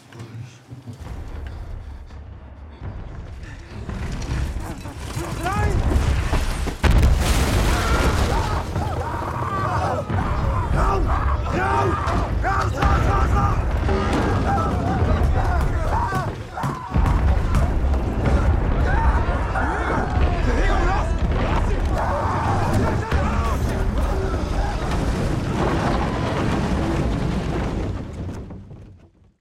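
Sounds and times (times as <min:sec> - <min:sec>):
heavy artillery thuds and crashes: 0:01.0 - 0:29.2
artillery creeping barrage in a First World War film battle scene: 0:03.8 - 0:28.7
voices of soldiers sheltering in a trench: 0:07.7 - 0:26.2.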